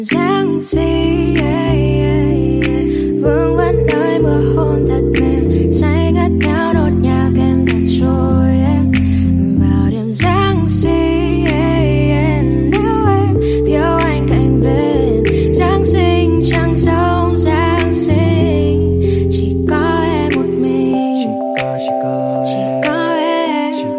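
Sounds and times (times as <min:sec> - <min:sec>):
ringtone: 0:00.1 - 0:23.9.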